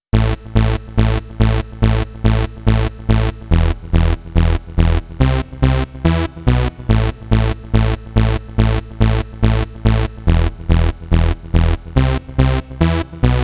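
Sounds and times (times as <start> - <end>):
zombie bass: 0.1 - 13.4.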